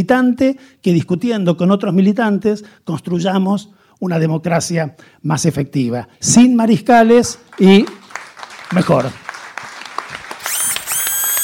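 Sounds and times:
speech: 0:00.0 - 0:08.0, 0:08.7 - 0:09.2
audience applause after a speaker at a debate: 0:07.4 - 0:11.4.

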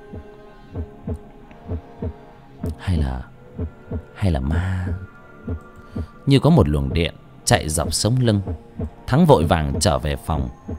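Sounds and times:
speech: 0:00.1 - 0:01.3, 0:02.9 - 0:10.7
pounding heartbeat sound effect: 0:00.1 - 0:02.8, 0:03.6 - 0:04.1, 0:04.9 - 0:06.1, 0:08.5 - 0:09.0, 0:09.7 - 0:10.0.

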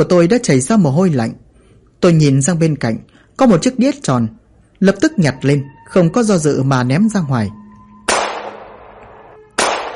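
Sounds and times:
speech: 0:00.0 - 0:01.4, 0:02.0 - 0:07.6
gunshots with ringing tail: 0:08.1 - 0:09.9.

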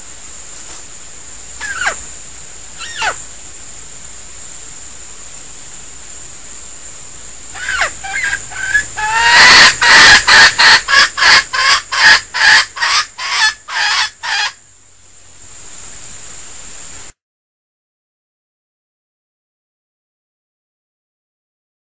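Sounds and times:
female junglefowl decoy bird squeaking and clucking: 0:01.6 - 0:02.0, 0:02.8 - 0:03.2, 0:07.5 - 0:14.6.

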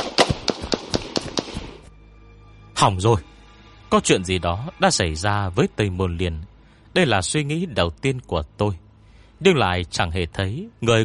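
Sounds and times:
several sharp gunshots: 0:00.0 - 0:01.8
speech: 0:02.8 - 0:03.3, 0:03.9 - 0:08.8, 0:09.4 - 0:11.0.

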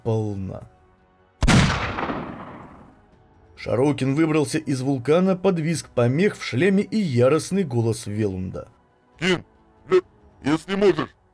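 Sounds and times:
speech: 0:00.0 - 0:00.8, 0:03.6 - 0:11.2
assault cannon firing a heavy blast: 0:01.4 - 0:02.7.

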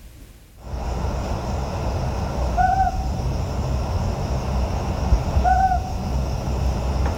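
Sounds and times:
steady low rumble of background noise: 0:00.0 - 0:07.1
Ryukyu scops owl hooting at night on Hateruma Island Japan: 0:02.5 - 0:03.2, 0:05.3 - 0:06.1.

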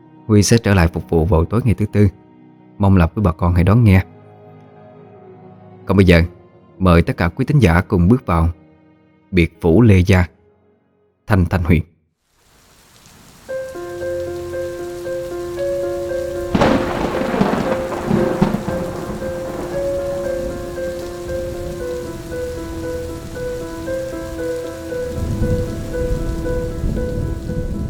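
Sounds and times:
speech: 0:00.3 - 0:02.2, 0:02.8 - 0:04.2, 0:05.9 - 0:08.6, 0:09.3 - 0:10.4, 0:11.3 - 0:11.9
steady rain hiss: 0:12.2 - 0:27.8
thunder cracking and rumbling in a rainstorm with lightning: 0:14.5 - 0:27.8.

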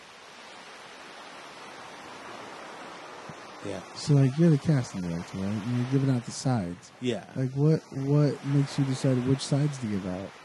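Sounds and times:
surf-like hissing noise: 0:00.0 - 0:10.4
speech: 0:03.6 - 0:10.4.

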